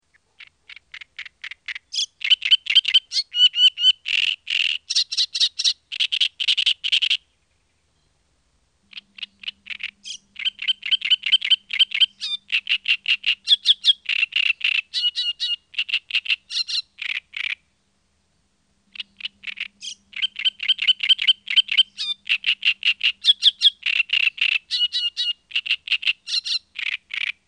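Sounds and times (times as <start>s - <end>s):
reed warbler and other birds singing: 0.0s - 27.4s.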